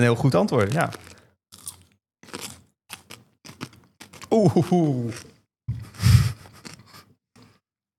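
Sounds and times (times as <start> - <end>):
speech: 0.0 - 1.2, 4.4 - 5.4
crunching and chewing a very small spicy red pepper: 0.6 - 5.4, 6.4 - 7.6.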